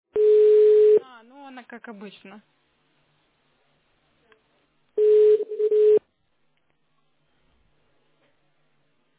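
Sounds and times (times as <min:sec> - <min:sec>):
telephone ringback tone while an outgoing call is placed to a company's service line: 0:00.2 - 0:01.0, 0:05.0 - 0:06.0
speech: 0:01.7 - 0:02.6.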